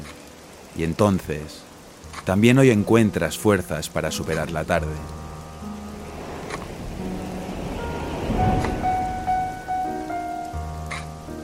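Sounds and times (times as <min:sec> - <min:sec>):
steady rain falling: 0:00.0 - 0:11.4
speech: 0:00.8 - 0:01.7, 0:02.3 - 0:05.2
low hum: 0:05.1 - 0:10.7.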